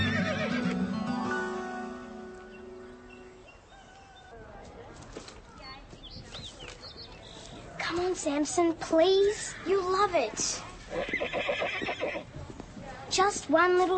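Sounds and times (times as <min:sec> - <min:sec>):
horse whinnying: 0:00.0 - 0:00.8, 0:10.8 - 0:12.3
rooster crowing: 0:03.7 - 0:04.5
speech: 0:08.1 - 0:11.8, 0:13.1 - 0:13.9.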